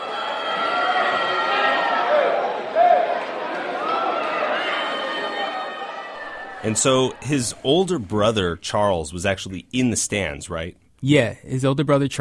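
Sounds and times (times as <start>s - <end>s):
large crowd booing: 0.0s - 8.2s
speech: 6.6s - 12.2s.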